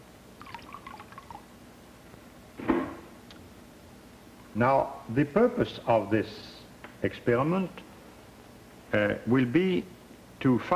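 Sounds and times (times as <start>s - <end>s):
indicator dye being poured into water: 0.4s - 1.4s
speech: 4.6s - 7.8s, 8.9s - 10.7s.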